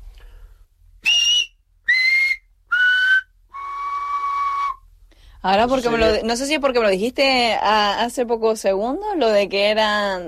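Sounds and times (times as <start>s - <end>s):
whistled vowel tones of a whistled language: 1.0s - 4.9s
speech: 5.4s - 10.2s.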